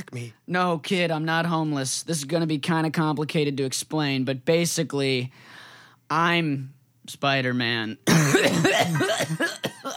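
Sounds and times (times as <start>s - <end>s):
speech: 0.0s - 9.9s
raspy voiced hacking coughs: 8.1s - 9.9s.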